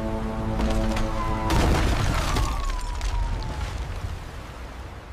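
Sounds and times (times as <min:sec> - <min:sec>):
boat collision: 0:00.2 - 0:04.2.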